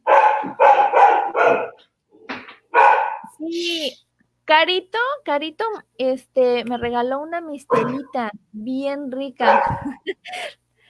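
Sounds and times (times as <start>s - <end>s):
dog barking at someone arriving: 0.0s - 1.9s, 2.7s - 3.3s, 7.7s - 8.1s, 9.4s - 10.0s
dog yelping softly: 0.1s - 1.8s, 2.8s - 3.3s, 7.7s - 8.1s
speech: 3.5s - 10.6s.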